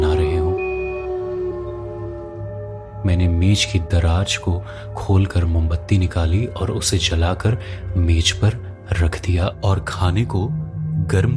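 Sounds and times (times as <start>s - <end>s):
dogs howling mournfully at night: 0.0s - 3.7s
speech: 3.0s - 11.3s.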